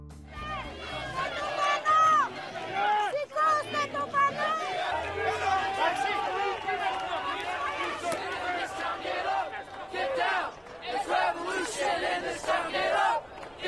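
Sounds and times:
crowd of street demonstrators shouting and chanting in Athens and New York: 0:00.0 - 0:13.6
loud bursts of yelling from street demonstrators: 0:00.4 - 0:10.5.

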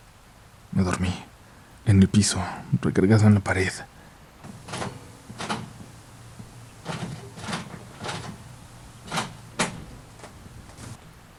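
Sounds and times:
speech: 0:00.8 - 0:01.3, 0:01.9 - 0:04.0
door creaking open: 0:04.4 - 0:11.0.

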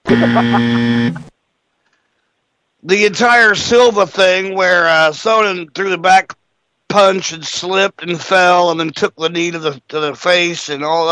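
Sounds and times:
harsh buzzer blast: 0:00.0 - 0:01.3
speech: 0:00.1 - 0:01.3, 0:02.8 - 0:11.1.

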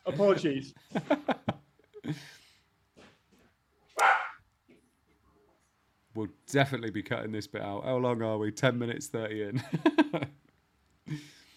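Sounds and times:
speech: 0:00.1 - 0:01.4, 0:02.1 - 0:02.4, 0:06.2 - 0:10.4
dog barking in an apartment: 0:04.0 - 0:04.4.

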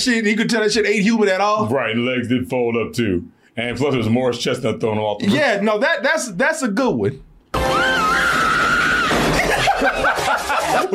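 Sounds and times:
speech: 0:00.0 - 0:07.3
woman screaming in a movie clip: 0:07.6 - 0:09.4
laughter: 0:09.1 - 0:10.9.

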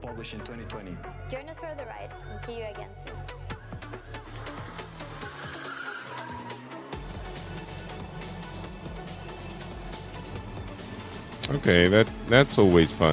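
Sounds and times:
speech: 0:00.2 - 0:04.8, 0:11.5 - 0:13.1
racing car tires squealing while drifting: 0:03.6 - 0:13.1
racing car engine roar: 0:03.8 - 0:13.1.

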